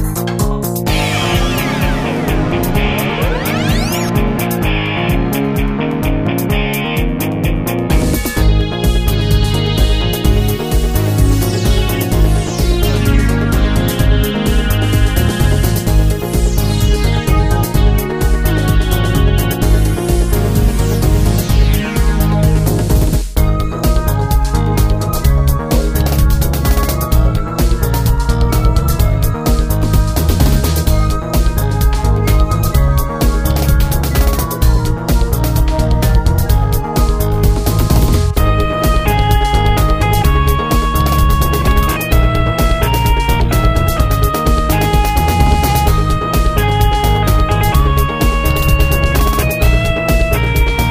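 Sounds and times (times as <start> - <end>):
background music pads: 0.2 - 50.9.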